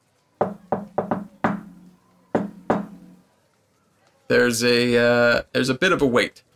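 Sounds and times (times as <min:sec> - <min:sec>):
rhythmic knocking on a wooden door: 0:00.4 - 0:03.2
speech: 0:04.3 - 0:06.5.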